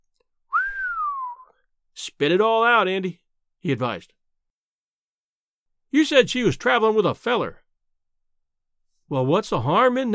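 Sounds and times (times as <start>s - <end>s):
long low whistle by a man gliding downward in pitch: 0.5s - 1.6s
speech: 2.2s - 4.2s, 5.9s - 7.6s, 9.1s - 10.1s.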